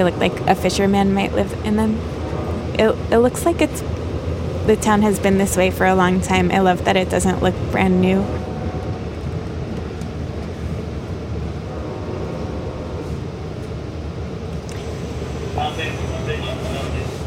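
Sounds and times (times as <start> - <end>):
speech: 0.0 - 2.2, 2.8 - 4.0, 4.7 - 8.4
low rumble inside a moving train car: 0.0 - 17.2.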